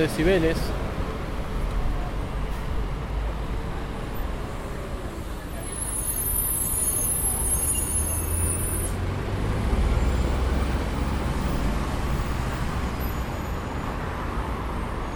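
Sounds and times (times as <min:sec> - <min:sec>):
speech: 0:00.0 - 0:00.8
city buses revving and accelerating in street traffic: 0:00.0 - 0:15.1
dense street traffic at the Cabildo and Juramento intersection: 0:00.0 - 0:15.1
high brake squeal: 0:05.5 - 0:09.0.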